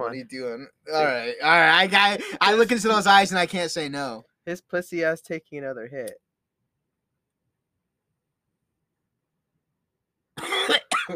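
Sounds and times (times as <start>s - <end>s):
speech: 0.1s - 6.2s
person coughing: 10.4s - 11.1s.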